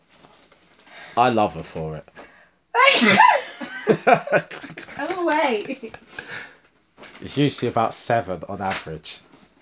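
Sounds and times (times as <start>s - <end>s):
speech: 1.2s - 2.2s, 3.0s - 3.4s, 4.0s - 6.5s, 7.2s - 9.3s
woman sneezing: 2.8s - 3.4s
laughter: 3.0s - 6.4s.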